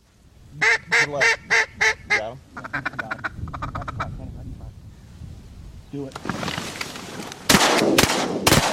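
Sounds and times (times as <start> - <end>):
duck call quacking during a duck hunt in southern Illinois: 0.6 - 4.2
shotgun blasts during a duck hunt in southern Illinois: 7.5 - 8.7.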